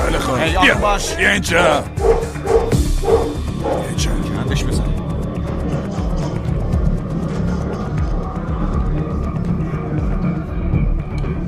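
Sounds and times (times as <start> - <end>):
busy noisy background: 0.0 - 11.4
speech: 0.3 - 2.4, 3.9 - 5.0
dog barking: 2.0 - 4.0.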